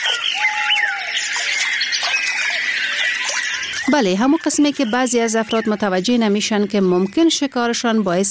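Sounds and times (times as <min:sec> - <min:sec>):
birds calling and chirping: 0:00.0 - 0:08.3
speech: 0:03.9 - 0:08.3.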